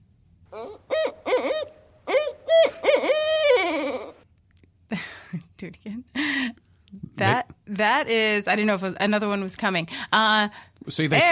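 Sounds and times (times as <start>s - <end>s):
speech: 0.5s - 1.8s, 7.2s - 11.3s
barred owl giving its rhythmic call: 0.5s - 4.2s.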